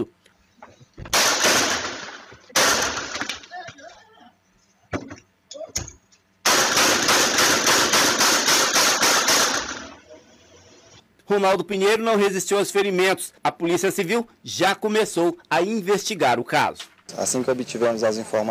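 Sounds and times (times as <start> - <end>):
close-range gunshots: 1.1 - 3.5, 6.4 - 10.0
speech: 11.4 - 18.4.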